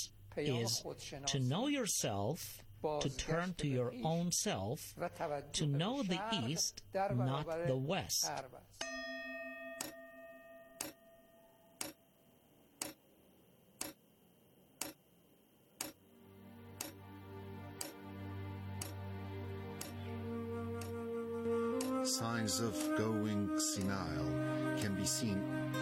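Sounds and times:
speech: 0.0 - 9.0, 22.6 - 23.3
chime ringing: 8.8 - 11.7
clock ticking: 9.8 - 10.0, 10.8 - 11.0, 11.8 - 12.0, 12.8 - 13.0, 13.8 - 14.0, 14.8 - 15.0, 15.8 - 16.0, 16.8 - 17.0, 17.8 - 18.0, 18.8 - 19.0, 19.8 - 20.0, 23.8 - 24.0
low sustained musical drone: 16.1 - 25.8.

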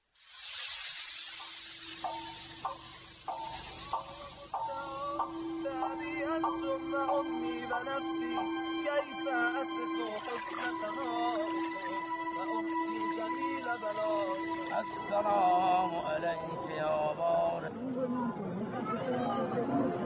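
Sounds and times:
steady rain: 0.0 - 6.0
gentle melodic instrumental line: 2.0 - 15.9
speech: 3.9 - 20.0.

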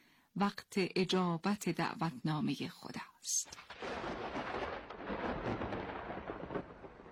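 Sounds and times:
speech: 0.4 - 3.8
deep continuous thunder rumbling: 3.6 - 7.1.

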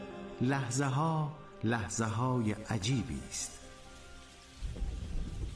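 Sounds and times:
speech: 0.4 - 3.6
steady rain falling: 2.0 - 5.5.

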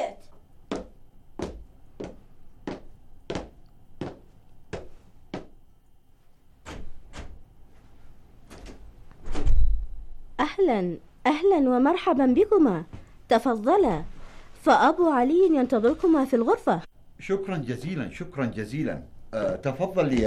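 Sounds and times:
knocking on a door: 0.7 - 5.6
speech: 10.6 - 20.2.

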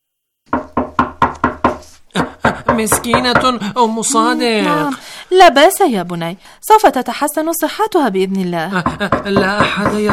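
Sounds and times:
firm knocking on a wooden door: 0.5 - 3.6, 8.8 - 10.1
speech: 2.1 - 10.1.

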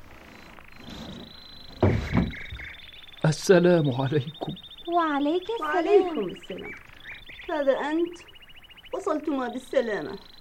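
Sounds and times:
faint steady whine: 0.0 - 10.3
door rattling thump: 1.7 - 2.7
speech: 1.9 - 2.4, 3.3 - 6.8, 7.5 - 8.3, 9.0 - 10.3.

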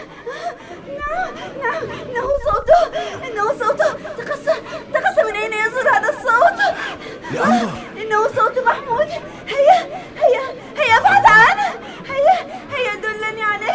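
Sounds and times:
chatter and voices: 0.0 - 13.7
laughter: 6.5 - 8.0, 10.8 - 12.4
child crying in high-pitched wails: 7.3 - 7.8.

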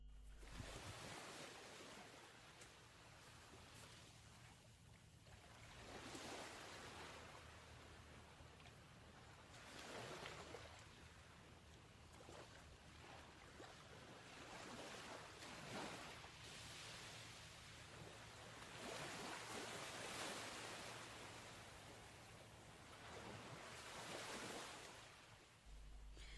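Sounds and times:
low rumble of surf: 0.0 - 26.3
sea waves breaking: 0.0 - 26.3
wind: 0.0 - 26.3.

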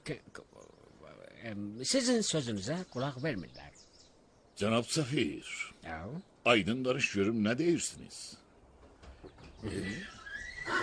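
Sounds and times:
speech: 0.1 - 0.4, 1.4 - 3.8, 4.6 - 8.4, 9.6 - 10.8
faint rustling: 8.6 - 9.9
Iranian horse neighing: 9.6 - 10.8.

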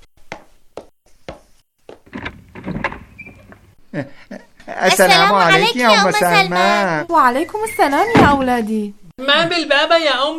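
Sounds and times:
door clicks and knocks: 1.9 - 3.8
speech: 3.9 - 10.3.

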